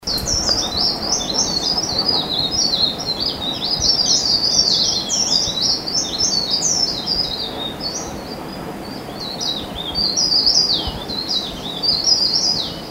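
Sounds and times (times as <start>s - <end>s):
Mountain leaf warbler warbling on Mount Kinabalu: 0.0s - 12.8s.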